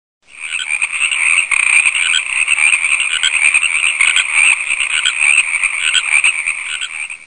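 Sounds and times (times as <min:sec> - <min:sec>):
tree frogs calling: 0:00.2 - 0:07.2.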